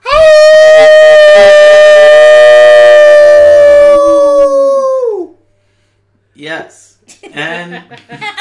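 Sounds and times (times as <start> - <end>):
people howling in imitation of a coyote pack: 0.0 - 5.4.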